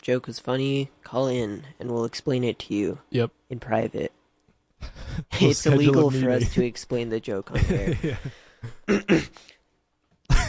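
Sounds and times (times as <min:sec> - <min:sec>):
speech: 0:00.0 - 0:04.2, 0:04.8 - 0:09.5
person clearing throat frantically: 0:08.7 - 0:09.4.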